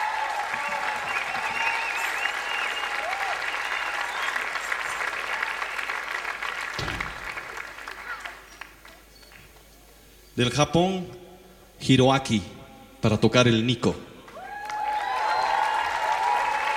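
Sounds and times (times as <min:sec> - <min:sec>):
crowd applause at a live music event: 0:00.0 - 0:09.6, 0:14.3 - 0:16.7
brief low thump: 0:06.8 - 0:07.4
speech: 0:10.4 - 0:11.2, 0:11.8 - 0:14.1.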